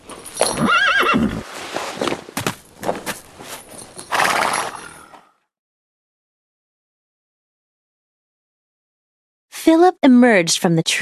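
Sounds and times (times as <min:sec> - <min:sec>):
horse neighing: 0:00.4 - 0:01.4, 0:04.1 - 0:05.3
rider shuffling steps hopping off a horse: 0:01.4 - 0:04.1
horse hooves clip-clopping: 0:02.0 - 0:05.0
speech: 0:09.7 - 0:11.0.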